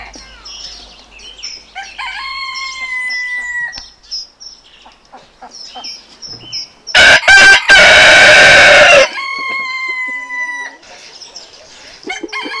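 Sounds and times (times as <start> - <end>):
chicken crowing: 1.8 - 3.8, 7.0 - 10.8, 12.1 - 12.5.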